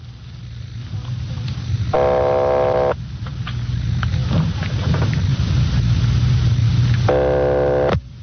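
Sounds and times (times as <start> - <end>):
steady low hum: 0.0 - 8.2
telephone line ringing tone on a long-distance call from Los Angeles to Napa: 2.0 - 3.0, 7.1 - 8.0.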